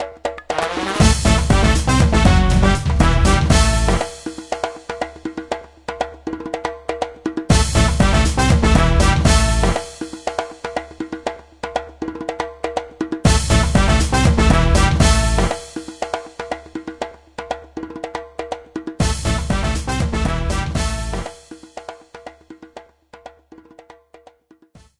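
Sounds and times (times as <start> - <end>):
drum beating: 0.0 - 24.3.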